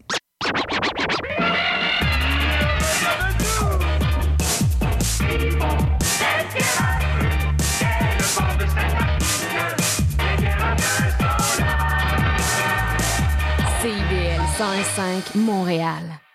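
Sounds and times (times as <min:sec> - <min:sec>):
rapid loud DJ turntable record scratches: 0:00.0 - 0:15.8
steady beat: 0:02.0 - 0:15.0
speech: 0:14.6 - 0:16.2.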